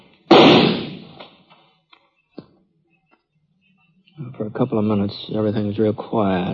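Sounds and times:
single loud gunshot fired in a canyon echoing: 0:00.3 - 0:01.2
speech: 0:04.4 - 0:06.5.

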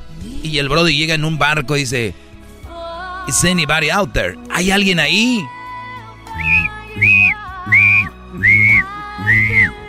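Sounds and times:
speech: 0:00.4 - 0:02.2, 0:03.2 - 0:05.6
whistle blowing short shrill blasts: 0:06.4 - 0:09.7.

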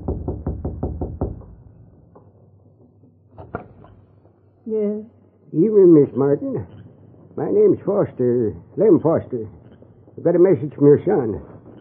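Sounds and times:
man knocking on the wooden door of a home: 0:00.0 - 0:02.3
speech: 0:04.7 - 0:06.8, 0:07.4 - 0:09.6, 0:10.2 - 0:11.5.

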